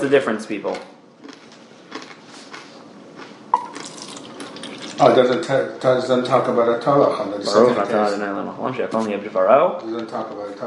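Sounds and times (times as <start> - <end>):
speech: 0.0 - 1.0, 5.0 - 10.6
drinking water pouring into a cup: 3.6 - 5.3.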